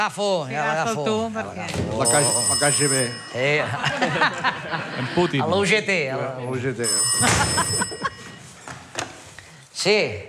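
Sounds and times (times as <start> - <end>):
speech: 0.0 - 8.1, 9.8 - 10.2
telephone ringing: 2.0 - 4.2, 6.8 - 8.7
laughter: 3.5 - 5.7, 7.2 - 8.5.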